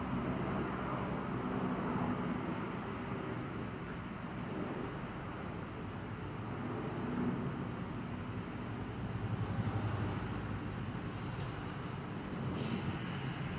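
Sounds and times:
low traffic-like rumble heard from a house window: 0.0s - 13.5s.

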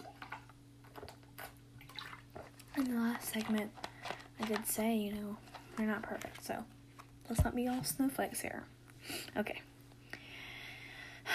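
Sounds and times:
person drinking water: 0.0s - 2.8s
faint steady electrical hum: 0.0s - 11.3s
speech: 2.8s - 3.8s, 4.4s - 9.6s.

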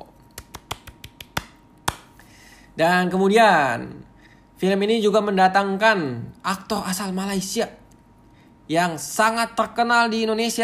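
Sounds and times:
hand clapping: 0.2s - 2.2s
speech: 2.8s - 7.8s, 8.7s - 10.6s.

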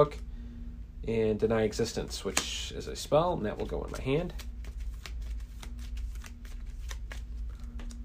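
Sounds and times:
speech: 0.0s - 0.2s, 1.0s - 4.5s
low steady hum: 0.0s - 8.0s
playing cards riffling while shuffled into a deck: 3.5s - 8.0s.

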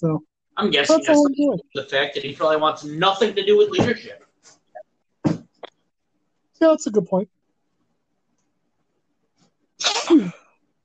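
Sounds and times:
speech: 0.0s - 4.6s, 6.6s - 7.4s, 9.8s - 10.4s
person sneezing with a hand over the microphone: 9.8s - 10.4s.

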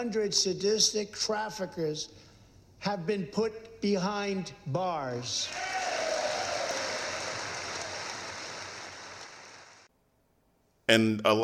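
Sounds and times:
speech: 0.0s - 2.2s, 2.8s - 5.8s, 10.9s - 11.4s
large audience applauding in a chamber: 5.5s - 9.9s.

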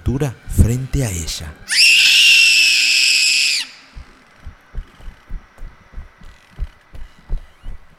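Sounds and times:
speech: 0.1s - 2.2s
loud shrill scream: 1.7s - 4.0s
steady low pounding heartbeat: 3.8s - 7.9s.

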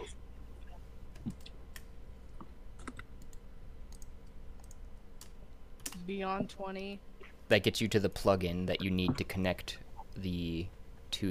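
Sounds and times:
steady low hum: 0.0s - 11.2s
computer mouse or keyboard clicks as a link is clicked: 1.1s - 6.0s
speech: 6.1s - 11.2s.

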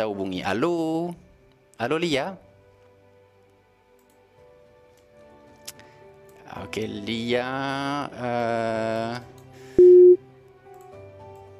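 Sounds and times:
speech: 0.0s - 1.2s, 1.8s - 2.5s, 6.6s - 9.3s
phone busy signal after dropped call: 9.8s - 10.2s.

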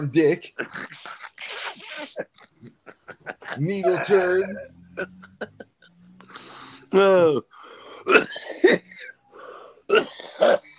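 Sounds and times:
speech: 0.0s - 1.2s, 2.0s - 2.4s, 3.6s - 5.2s, 6.9s - 7.5s
harsh raspy coughs in a coughing fit: 0.6s - 2.5s, 3.5s - 5.7s, 7.8s - 9.2s, 9.9s - 10.7s
laughter: 2.0s - 5.9s
person's strained throaty groan: 3.8s - 5.6s, 6.4s - 9.0s
person gasping: 7.5s - 8.1s.

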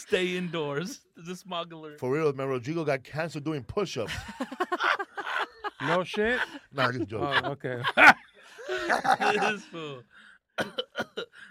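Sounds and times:
speech: 0.0s - 5.1s, 5.8s - 11.4s
laughter: 4.1s - 9.7s
fake cough: 10.6s - 11.4s.

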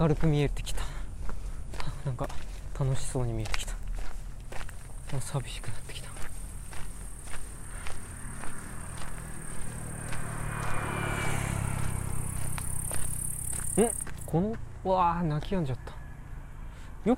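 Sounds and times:
speech: 0.0s - 1.0s, 2.0s - 3.8s, 5.1s - 6.1s, 13.8s - 15.9s
footsteps crunching along a path: 0.0s - 15.9s
bush cricket or katydid trilling at night: 4.6s - 14.5s.

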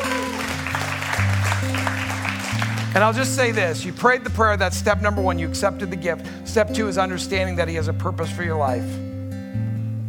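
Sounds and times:
audience applause after a prayer: 0.0s - 3.7s
speech: 2.9s - 9.1s.

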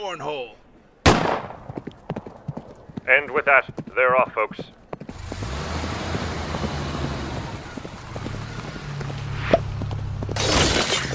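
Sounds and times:
speech: 0.0s - 0.6s, 3.1s - 4.8s
car engine rumble: 4.8s - 11.1s
shattering from car crash: 10.4s - 11.1s.

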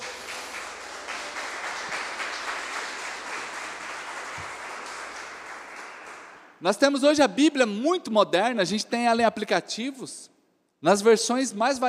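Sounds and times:
audience applauding loudly: 0.0s - 6.6s
speech: 6.6s - 11.8s.

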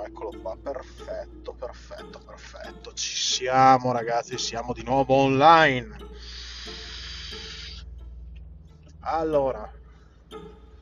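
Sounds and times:
speech: 0.1s - 6.8s, 9.0s - 10.6s
breathy hiss of exhaled vape vapor: 6.2s - 7.8s.

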